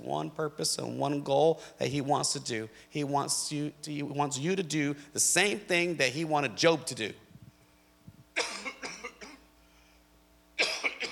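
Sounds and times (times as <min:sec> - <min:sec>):
speech: 0:00.0 - 0:07.2
person coughing: 0:08.4 - 0:09.5, 0:10.6 - 0:11.1.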